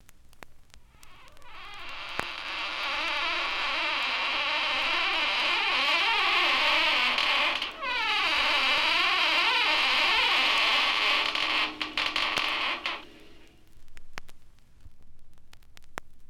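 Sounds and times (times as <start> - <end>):
door creaking: 1.0 - 13.6.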